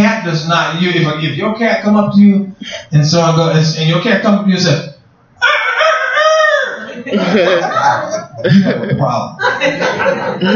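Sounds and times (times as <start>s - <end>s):
speech: 0.3s - 5.6s, 7.1s - 10.5s
person vocally imitating a rooster crowing: 5.4s - 7.6s
laughter: 5.4s - 10.5s.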